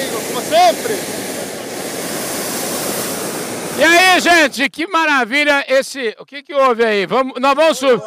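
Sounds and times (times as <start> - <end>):
hot air balloon burner roaring: 0.0 - 4.6
speech: 0.7 - 1.2, 3.8 - 8.0.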